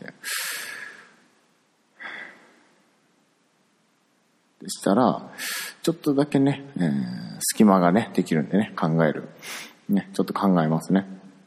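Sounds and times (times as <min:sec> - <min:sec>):
person taking a deep breath: 0:00.2 - 0:01.3, 0:02.0 - 0:02.8, 0:05.4 - 0:05.8, 0:09.4 - 0:09.8
speech: 0:04.7 - 0:11.2.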